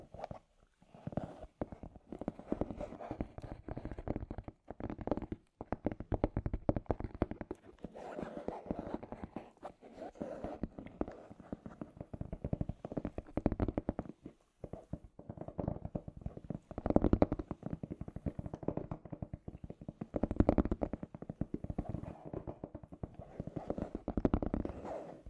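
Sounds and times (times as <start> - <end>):
scratchy tapping: 1.6 - 25.2.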